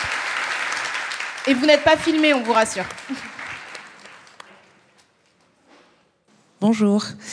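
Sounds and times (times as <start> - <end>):
audience applause: 0.0 - 5.2
speech: 1.4 - 3.4, 6.6 - 7.3.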